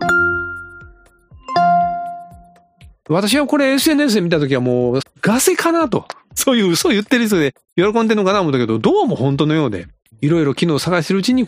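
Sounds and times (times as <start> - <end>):
iPhone hidden startup chime with two bell-like tonal strikes: 0.0 - 2.7
speech: 3.1 - 11.4.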